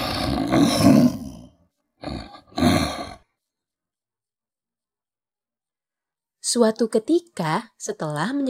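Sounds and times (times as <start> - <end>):
lion roaring: 0.0 - 3.2
speech: 0.5 - 1.2, 6.5 - 8.4.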